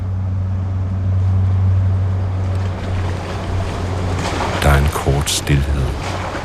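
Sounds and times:
large motorboat engine droning: 0.0s - 6.4s
wind: 0.0s - 6.4s
water lapping: 2.5s - 6.4s
speech: 5.3s - 5.8s.

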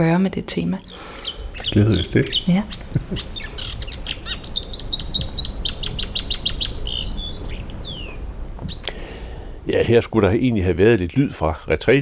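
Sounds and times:
speech: 0.0s - 3.4s, 9.7s - 12.0s
nightingale singing in summer: 0.0s - 9.0s
faint hiss: 0.0s - 12.0s.

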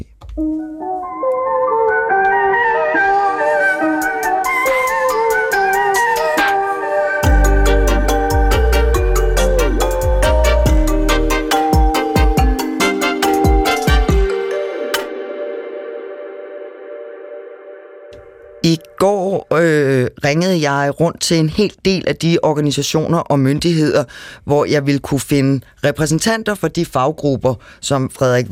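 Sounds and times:
speech: 0.0s - 1.0s, 20.3s - 28.4s
bright bell-like melodic notes: 0.4s - 19.4s
signature theme tune with bell-like notes, bass and percussion: 0.4s - 19.4s
deep bass: 7.2s - 12.6s.

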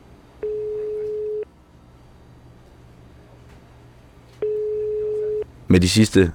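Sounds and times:
telephone ringback tone on an outgoing call: 0.4s - 1.5s, 4.4s - 5.4s
speech: 5.7s - 6.3s.

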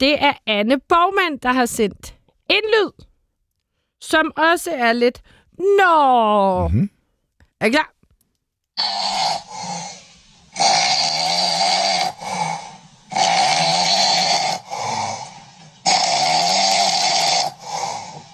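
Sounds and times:
speech: 0.0s - 3.1s, 4.0s - 7.0s, 7.6s - 8.0s, 8.8s - 9.9s
man snoring asleep in a bedroom: 8.8s - 18.3s.

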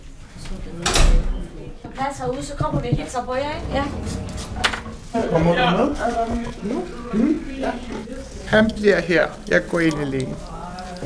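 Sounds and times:
speech: 2.0s - 10.5s
door opening with scraping mechanical noise: 3.2s - 5.5s.

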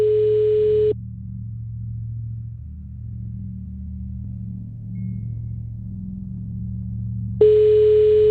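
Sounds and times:
ringback tone of an outgoing phone call: 0.0s - 0.9s, 7.4s - 8.2s
low hum: 0.0s - 8.2s.

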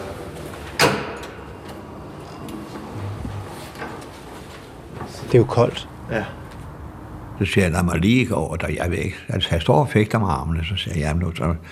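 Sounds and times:
electric sliding doors opening with a clunk: 0.0s - 5.5s
faint noise: 0.0s - 11.7s
speech: 5.3s - 6.4s, 7.4s - 11.7s.

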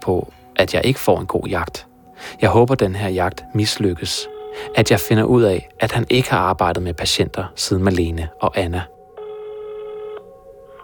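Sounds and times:
speech: 0.0s - 9.0s
electronic telephone ringback tone during outgoing call: 4.1s - 5.2s, 9.1s - 10.8s.

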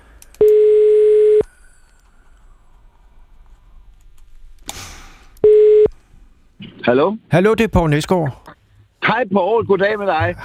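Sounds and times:
telephone ringback tone of an outgoing call: 0.4s - 1.4s, 5.4s - 5.9s
speech: 6.9s - 8.5s, 9.1s - 10.4s.

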